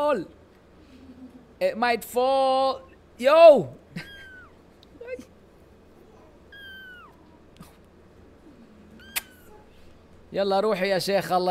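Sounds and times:
steady low noise: 0:00.0 - 0:11.5
speech: 0:00.1 - 0:00.4, 0:01.6 - 0:04.1, 0:10.3 - 0:11.5
cat being held meowing: 0:04.0 - 0:04.6, 0:06.2 - 0:07.4, 0:08.9 - 0:09.7.

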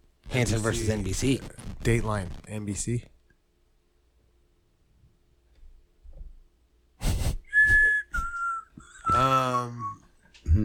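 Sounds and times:
speech: 0:00.4 - 0:03.1
person whistling into a microphone: 0:07.5 - 0:10.0
person humming: 0:09.0 - 0:10.6.

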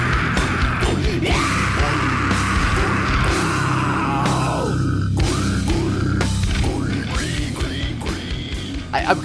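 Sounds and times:
harsh high-pitched pig squeal vocals: 0:00.0 - 0:07.2
dense loud heavy music with pounding low end: 0:00.0 - 0:09.2.

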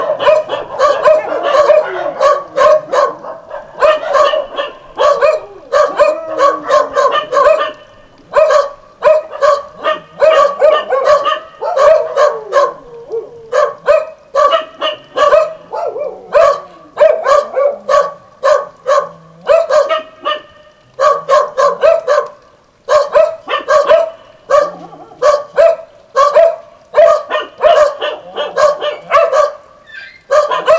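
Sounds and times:
dog barking: 0:00.0 - 0:30.7.

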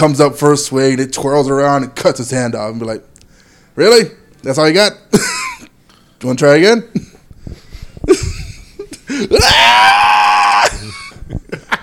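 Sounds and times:
speech: 0:00.0 - 0:03.1, 0:03.8 - 0:05.5, 0:06.2 - 0:07.6, 0:09.2 - 0:10.1
person screaming: 0:09.2 - 0:11.0
person's anguished yelps and wails: 0:09.2 - 0:11.0.

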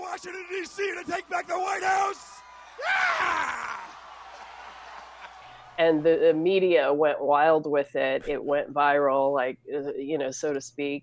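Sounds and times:
hoarse excited yeehaw-like scream at rally speech: 0:00.0 - 0:05.7
speech: 0:00.2 - 0:03.8, 0:05.8 - 0:11.0.

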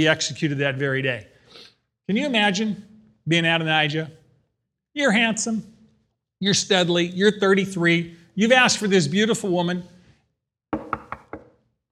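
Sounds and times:
speech: 0:00.0 - 0:01.3, 0:02.1 - 0:04.2, 0:05.0 - 0:05.7, 0:06.4 - 0:09.9
knocks on a wooden door: 0:10.8 - 0:11.6.

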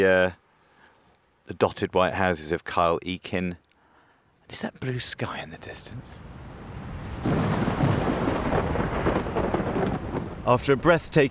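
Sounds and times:
speech: 0:00.0 - 0:00.4, 0:01.5 - 0:03.6, 0:04.5 - 0:06.3, 0:10.4 - 0:11.3
scattered sharper rain patters: 0:04.5 - 0:11.3
heavy rain pouring down: 0:05.8 - 0:11.3.

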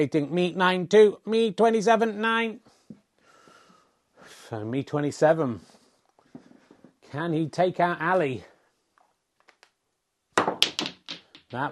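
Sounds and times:
speech: 0:00.0 - 0:02.7, 0:04.5 - 0:05.7, 0:07.1 - 0:08.5, 0:11.5 - 0:11.7
snooker balls colliding as a red ball drives another red into a pocket: 0:10.4 - 0:11.7.

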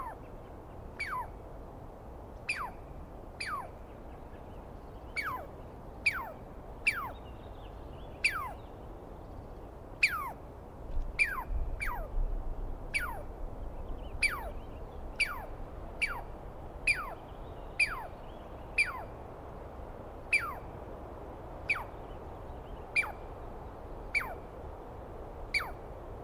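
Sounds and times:
Douglas squirrel screaming at dawn in the East Cascades: 0:01.0 - 0:01.3, 0:02.5 - 0:02.8, 0:03.4 - 0:03.7, 0:05.2 - 0:05.5, 0:06.1 - 0:07.2, 0:08.2 - 0:08.6, 0:10.0 - 0:10.4, 0:11.2 - 0:12.2, 0:12.9 - 0:13.3, 0:14.2 - 0:14.6, 0:15.2 - 0:17.2, 0:17.8 - 0:18.1, 0:18.8 - 0:19.1, 0:20.3 - 0:20.7, 0:21.6 - 0:22.0, 0:22.9 - 0:23.2, 0:24.1 - 0:24.4, 0:25.5 - 0:25.8.

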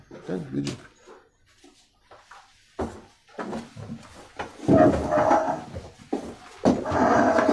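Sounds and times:
chairs scraping and knocking as they are shifted into place: 0:02.8 - 0:07.5.

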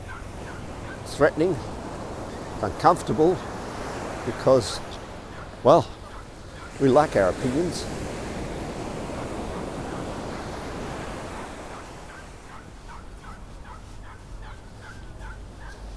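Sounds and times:
hooked seagull giving short sharp cries: 0:00.0 - 0:01.1, 0:05.2 - 0:06.8, 0:09.2 - 0:15.9
roaring surf: 0:00.0 - 0:15.9
wind: 0:00.0 - 0:15.9
speech: 0:01.1 - 0:01.8, 0:02.6 - 0:03.5, 0:04.2 - 0:04.9, 0:05.6 - 0:06.0, 0:06.8 - 0:08.1.

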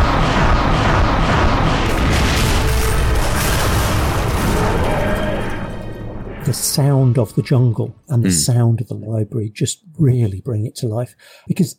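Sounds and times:
special weapons cyborg firing a heavy sci-fi weapon in an audio drama: 0:00.0 - 0:06.3
speech: 0:06.8 - 0:11.7.

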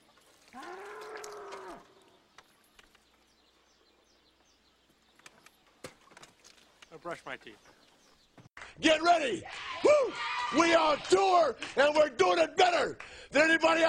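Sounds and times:
faint bird chirps outdoors: 0:00.0 - 0:08.6
bull mooing: 0:00.5 - 0:02.0
speech: 0:07.0 - 0:07.8, 0:08.8 - 0:13.8.

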